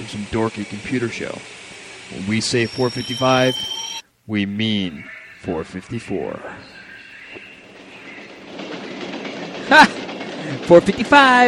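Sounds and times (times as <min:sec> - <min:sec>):
Amtrak passenger train rumbling along the rails: 0:00.0 - 0:04.0, 0:05.4 - 0:11.4
speech: 0:00.0 - 0:06.7, 0:09.7 - 0:10.0, 0:10.6 - 0:11.4
thin metallic whine of passenger train: 0:02.1 - 0:06.4.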